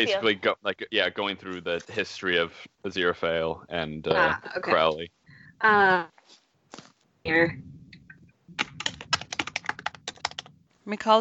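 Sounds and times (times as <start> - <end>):
speech: 0.0 - 7.8, 10.9 - 11.1
fast furious typing on a computer keyboard: 8.5 - 10.6.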